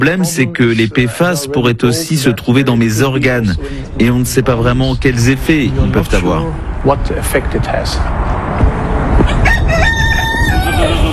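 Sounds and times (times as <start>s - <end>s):
speech: 0.0s - 8.7s
busy noisy background: 0.0s - 11.1s
rooster crowing: 9.2s - 11.1s.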